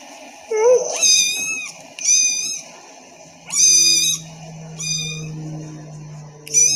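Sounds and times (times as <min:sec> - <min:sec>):
faint low hum: 0:00.1 - 0:06.7
kitten meowing: 0:00.5 - 0:02.7, 0:03.5 - 0:05.5, 0:06.4 - 0:06.7.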